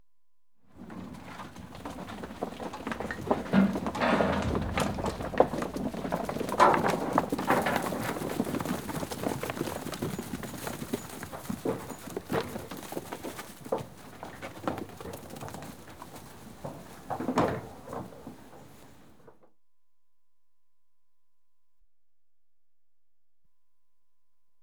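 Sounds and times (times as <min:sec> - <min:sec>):
sheep scurrying past outdoors: 0:00.8 - 0:19.3.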